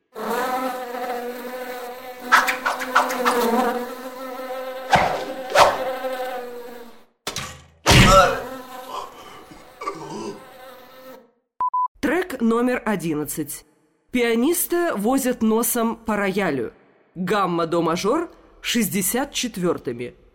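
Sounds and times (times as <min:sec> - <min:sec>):
bee buzzing: 0:00.1 - 0:07.1, 0:08.0 - 0:11.2
sharp thuds: 0:04.9 - 0:05.9
speech: 0:12.6 - 0:20.2.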